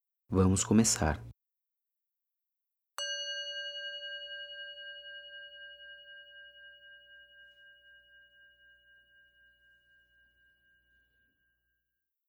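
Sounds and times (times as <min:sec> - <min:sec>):
speech: 0:00.3 - 0:01.3
bell ringing: 0:03.0 - 0:11.0.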